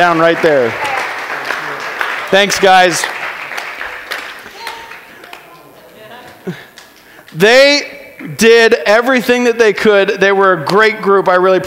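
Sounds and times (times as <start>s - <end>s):
speech: 0.0s - 0.9s, 2.3s - 3.2s, 7.3s - 11.6s
audience applauding: 0.0s - 7.4s.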